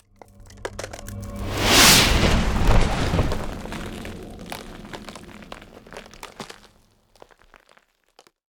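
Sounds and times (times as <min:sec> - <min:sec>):
ice spell cold whooshes: 0:00.2 - 0:06.8.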